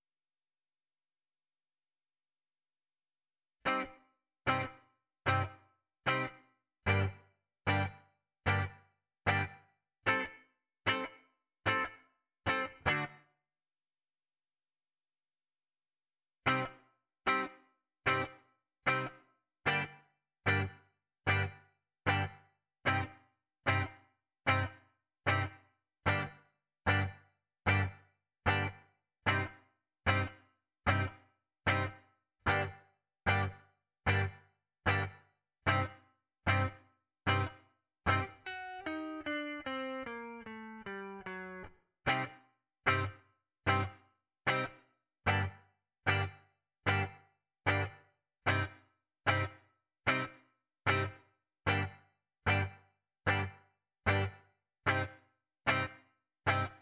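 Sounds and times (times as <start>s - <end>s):
ragtime guitar: 3.7s - 3.9s, 4.5s - 5.5s, 6.1s - 7.9s, 8.5s - 8.7s, 9.3s - 9.5s, 10.1s - 11.1s, 11.7s - 13.2s, 16.5s - 19.1s, 19.7s - 19.9s, 21.3s - 21.5s, 22.1s - 25.5s, 26.1s - 26.3s, 26.9s - 27.1s, 27.7s - 27.9s, 28.5s - 30.3s, 30.9s - 34.3s, 34.9s - 35.9s, 36.5s - 43.9s, 44.5s - 45.5s, 46.1s - 47.9s, 48.5s - 48.7s, 49.3s - 49.5s, 50.1s - 50.3s, 50.9s - 51.9s, 52.5s - 52.7s, 53.3s - 53.5s, 54.1s - 54.3s, 54.9s - 55.1s, 55.7s - 56.7s.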